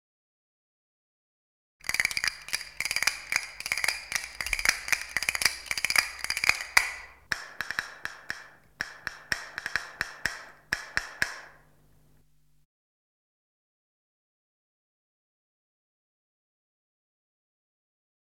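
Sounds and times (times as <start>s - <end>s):
wooden castanets clicking: 1.8s - 11.7s.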